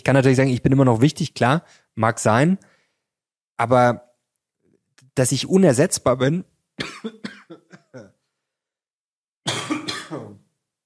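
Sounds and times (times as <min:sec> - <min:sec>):
speech: 0:00.0 - 0:02.7, 0:03.6 - 0:04.1, 0:05.2 - 0:07.4
heavy hacking cough: 0:06.8 - 0:08.2, 0:09.5 - 0:10.4.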